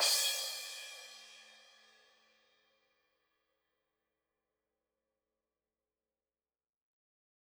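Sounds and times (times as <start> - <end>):
drum kit crash cymbal: 0.0 - 1.7.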